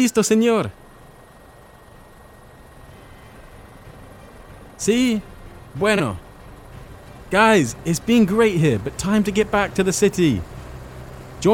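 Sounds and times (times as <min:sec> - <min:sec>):
speech: 0:00.0 - 0:00.8, 0:04.8 - 0:06.2, 0:07.3 - 0:10.5, 0:11.4 - 0:11.5
helicopter engine and rotor running: 0:00.0 - 0:11.5.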